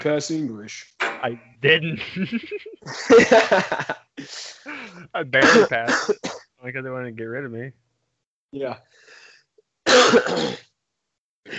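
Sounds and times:
speech: 0.0s - 7.8s, 8.5s - 9.2s, 10.0s - 10.7s
laughter: 1.6s - 5.9s
raspy throat clearing: 4.2s - 6.4s, 9.9s - 10.6s
rough cough: 4.2s - 6.4s, 9.9s - 10.6s.

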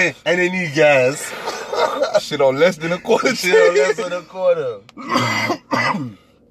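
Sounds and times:
speech: 0.0s - 6.2s
harsh rasping coughs: 1.2s - 2.2s, 5.0s - 6.3s.

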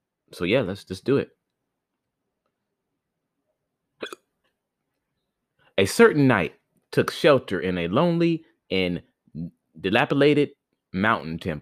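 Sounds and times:
speech: 0.3s - 1.4s, 5.8s - 11.6s
hiccup: 4.0s - 4.3s.

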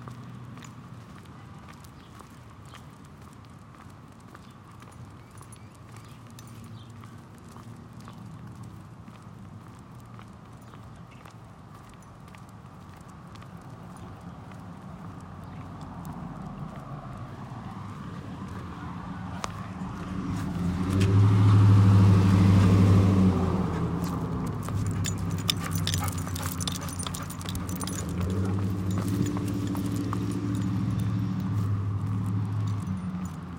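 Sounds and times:
footsteps on a city street in Central Phoenix Arizona: 0.0s - 33.5s
low traffic hum: 0.0s - 33.5s
car passing: 15.0s - 33.5s.

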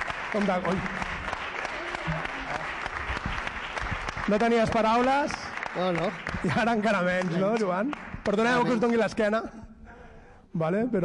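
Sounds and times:
audience applause: 0.0s - 9.0s
speech: 0.3s - 1.0s, 2.0s - 2.3s, 4.3s - 9.6s, 10.5s - 11.0s.

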